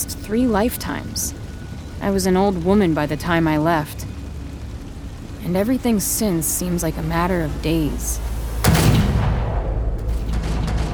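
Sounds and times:
speech: 0:00.3 - 0:01.4, 0:02.0 - 0:04.1, 0:05.4 - 0:08.3
gunshot echoing through a large building: 0:08.5 - 0:10.9.

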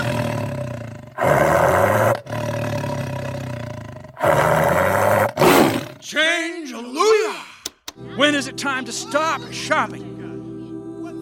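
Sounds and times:
Siberian tiger roaring: 0:00.0 - 0:06.0
speech: 0:08.2 - 0:10.1.

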